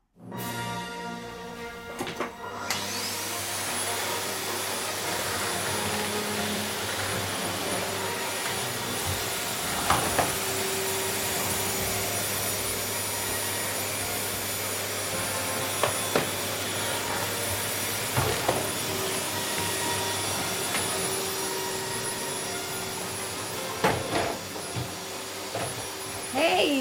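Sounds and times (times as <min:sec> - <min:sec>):
vacuum cleaner running: 0:00.6 - 0:26.7
vacuum cleaner bumps and clunks as it is pushed around: 0:06.9 - 0:12.1, 0:15.1 - 0:21.3, 0:23.6 - 0:26.0.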